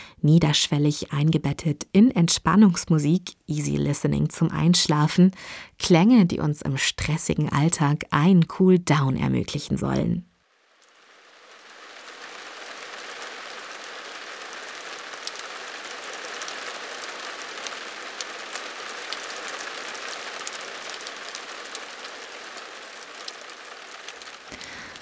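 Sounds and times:
speech: 0:00.2 - 0:10.3
rain pattering on a roof: 0:09.5 - 0:25.0.

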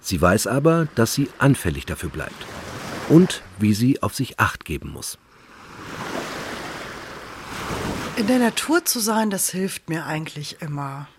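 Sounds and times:
speech: 0:00.0 - 0:05.2, 0:08.2 - 0:11.1
sea surf washing onto a beach: 0:00.1 - 0:03.7, 0:05.5 - 0:08.8.

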